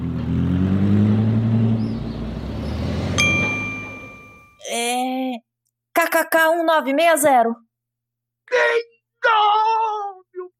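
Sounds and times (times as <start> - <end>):
car engine passing by outside window: 0.0 - 4.4
bright metallic ding: 3.2 - 4.6
speech: 6.1 - 7.6, 8.5 - 9.8.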